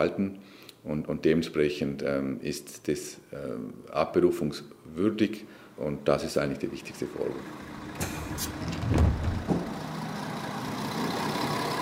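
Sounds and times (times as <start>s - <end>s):
speech: 0.0s - 9.3s
bus engine rumbling in Vaduz: 6.5s - 11.7s
street traffic in Vaduz: 6.7s - 11.7s
bus brakes hissing: 7.2s - 9.9s
louder low thumps: 7.9s - 9.8s.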